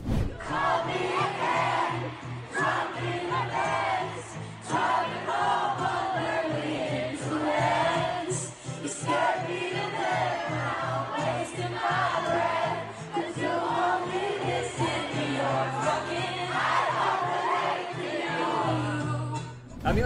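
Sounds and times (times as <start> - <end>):
large crowd singing at a live acoustic show: 0.0 - 20.0.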